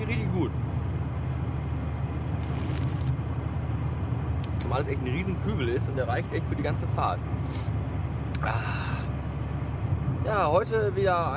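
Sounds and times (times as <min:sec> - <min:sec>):
interior road noise from a moving car: 0:00.0 - 0:11.3
speech: 0:04.7 - 0:07.8, 0:08.4 - 0:09.0, 0:10.2 - 0:11.3.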